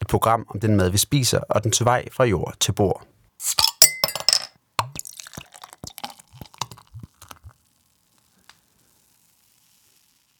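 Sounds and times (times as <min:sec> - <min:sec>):
speech: 0:00.1 - 0:03.7
beer bottle clinking against a glass: 0:03.4 - 0:06.9.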